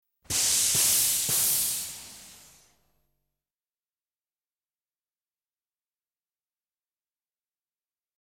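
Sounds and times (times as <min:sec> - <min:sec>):
air pressure hiss: 0:00.3 - 0:02.8.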